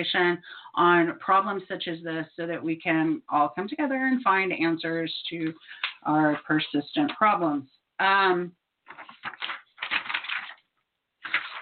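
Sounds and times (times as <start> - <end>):
speech: 0.0 - 9.4
paper rustling and crinkling: 8.8 - 11.6.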